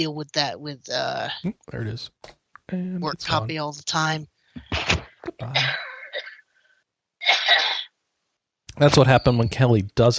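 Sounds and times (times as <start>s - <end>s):
speech: 0.0s - 5.8s, 8.8s - 10.1s
cough muffled by hand over microphone: 4.6s - 6.4s, 7.2s - 7.9s.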